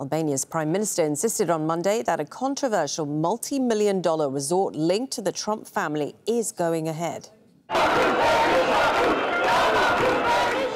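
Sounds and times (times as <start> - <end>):
speech: 0.0 - 9.2
large protest crowd in Albania's capital chanting and shouting: 7.7 - 10.7.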